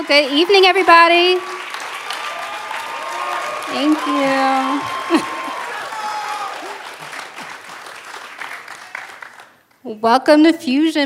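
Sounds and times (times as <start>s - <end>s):
speech: 0.0s - 1.6s, 3.7s - 5.3s, 9.9s - 11.0s
crowd noise: 0.0s - 9.6s
audience applause for coaches coming on stage at an evening ministry gathering: 0.0s - 9.8s.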